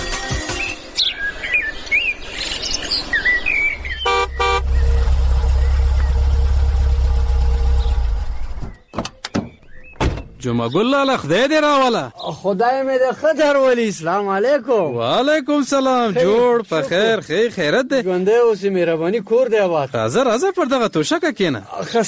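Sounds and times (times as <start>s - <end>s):
birds chirping: 0.2s - 22.0s
car engine idling: 3.8s - 8.7s
horn-like toot: 4.1s - 5.1s
speech: 10.6s - 22.0s.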